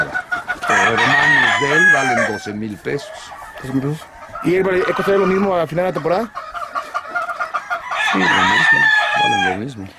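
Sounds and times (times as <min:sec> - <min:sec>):
fowl clucking: 0:00.0 - 0:09.9
rooster crowing: 0:00.6 - 0:02.6, 0:03.2 - 0:06.6, 0:07.2 - 0:09.7
speech: 0:00.9 - 0:06.6, 0:08.1 - 0:09.9.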